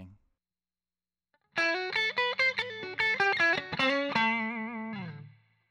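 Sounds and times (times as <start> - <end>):
Strat electric guitar neck pickup hotrod clean tone: 1.6 - 5.6.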